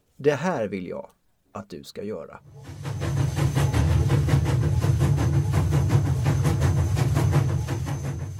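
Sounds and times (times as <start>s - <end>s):
speech: 0.2s - 3.2s
train wheels clattering over rail joints: 2.6s - 8.3s.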